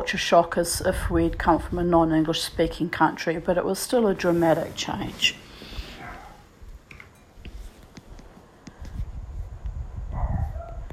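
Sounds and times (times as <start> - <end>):
speech: 0.0 - 5.4
low rumbling noise: 0.0 - 10.9
dog barking in the distance, muffled: 6.0 - 6.5, 10.1 - 10.9.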